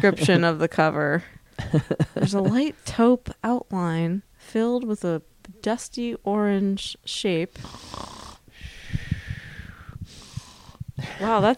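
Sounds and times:
speech: 0.0 - 8.1, 11.0 - 11.5
laughter: 1.6 - 2.8, 11.0 - 11.5
person fake snoring: 7.6 - 11.3.

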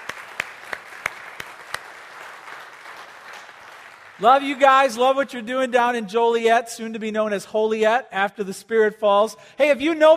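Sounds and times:
large crowd applauding: 0.0 - 5.0
speech: 4.2 - 10.1.

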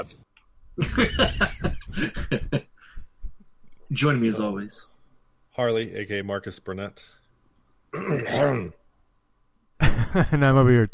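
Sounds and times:
speech: 0.0 - 0.2, 0.8 - 2.5, 4.0 - 4.9, 5.6 - 7.2, 7.9 - 8.8, 9.8 - 10.9
laughter: 0.8 - 2.6, 9.8 - 10.4
throat clearing: 8.0 - 8.7.

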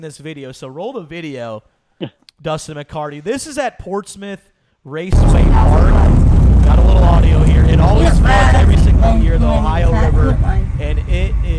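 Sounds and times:
speech: 0.0 - 11.5
jet ski engine revving: 5.2 - 11.5.

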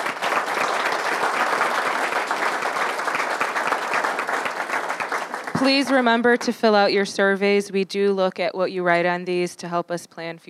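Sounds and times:
audience applause after a presentation: 0.0 - 6.3
speech: 5.6 - 10.4.

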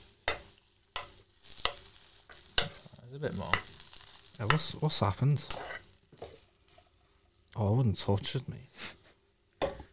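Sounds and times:
utensil scraping a pan: 0.0 - 7.0
food sizzling in a frying pan: 0.0 - 9.9
speech: 3.1 - 3.8, 4.4 - 5.7, 7.6 - 9.0.

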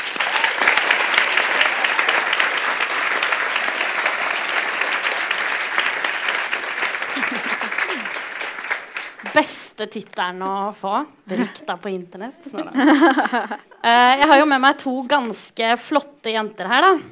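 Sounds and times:
audience applause: 0.0 - 9.6
laughter: 6.9 - 8.4, 11.3 - 11.8, 12.4 - 13.8
speech: 9.4 - 17.0.

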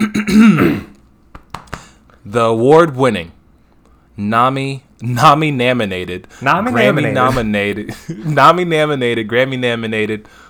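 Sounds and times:
loud throat clearing: 0.0 - 1.0
speech: 0.4 - 0.9, 2.3 - 3.4, 4.2 - 10.4.

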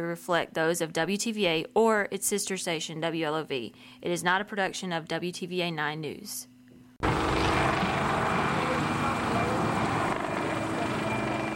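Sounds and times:
speech: 0.0 - 7.4
helicopter rotor and engine flying overhead: 7.0 - 11.5.

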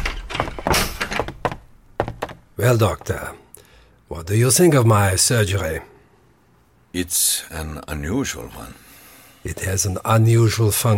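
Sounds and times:
door being pulled shut: 0.0 - 2.5
thunks and clattering knocks: 0.0 - 3.2
speech: 2.6 - 3.4, 4.1 - 5.9, 6.9 - 8.8, 9.4 - 10.9.

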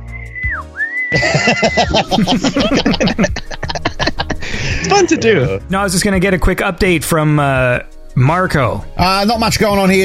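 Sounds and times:
person whistling with the mouth: 0.0 - 1.3
speech: 1.1 - 3.8, 4.8 - 10.0
laughter: 1.1 - 5.4.

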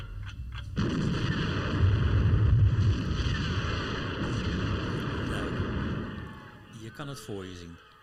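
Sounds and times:
film soundtrack explosion rumble as boat sinks: 0.8 - 6.5
speech: 7.0 - 7.9.

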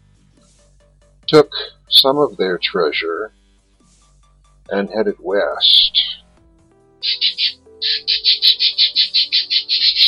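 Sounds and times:
speech: 1.3 - 3.4, 4.7 - 6.1
pet birds squawking: 5.6 - 6.2, 7.0 - 10.0.

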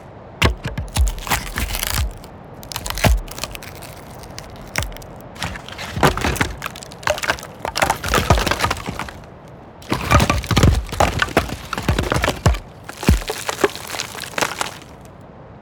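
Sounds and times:
rustling foliage: 0.0 - 15.2
sharp splintering hits of wood: 0.4 - 15.1
subtle leaf crunches: 0.4 - 15.1
wood and brush cracking, creaking and snapping: 0.4 - 15.1.

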